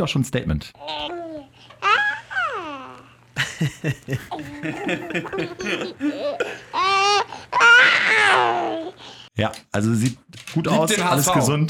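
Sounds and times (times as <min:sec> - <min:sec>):
speech: 0:00.0 - 0:01.2, 0:03.6 - 0:06.7, 0:09.4 - 0:11.6
newborn baby babbling and cooing: 0:00.8 - 0:03.2, 0:06.0 - 0:09.0
newborn baby crying: 0:00.8 - 0:03.2, 0:04.3 - 0:09.0
laughter: 0:03.4 - 0:07.0.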